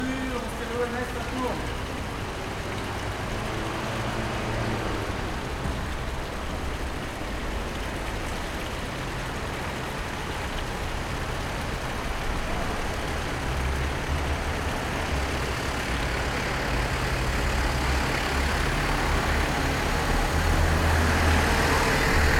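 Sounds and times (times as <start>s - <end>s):
fountain splashing: 0.0s - 22.3s
street ambience on a French street with a fountain: 0.0s - 22.3s.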